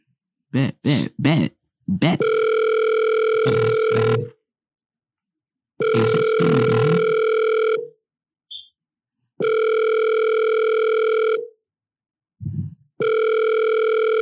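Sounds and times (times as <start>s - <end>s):
speech: 0.5s - 2.6s, 3.4s - 4.4s, 5.8s - 7.2s
telephone ringback tone while a call is placed: 2.2s - 4.3s, 5.8s - 7.9s, 9.4s - 11.5s, 13.0s - 14.2s.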